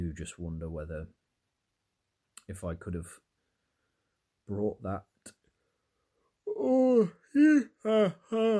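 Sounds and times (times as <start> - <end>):
speech: 0.1 - 1.2, 2.5 - 3.3, 4.5 - 5.4, 6.6 - 8.5
person yawning: 6.4 - 8.5.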